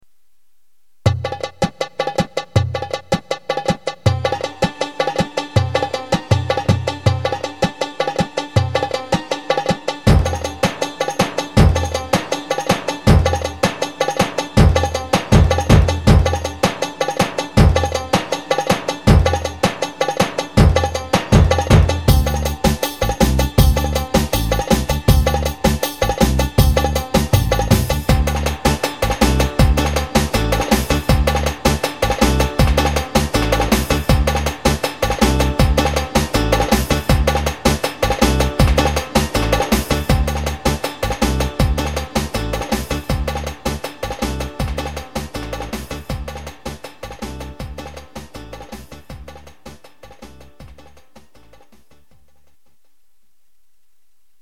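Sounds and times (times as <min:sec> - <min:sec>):
keyboard rhythm: 0:01.0 - 0:52.2.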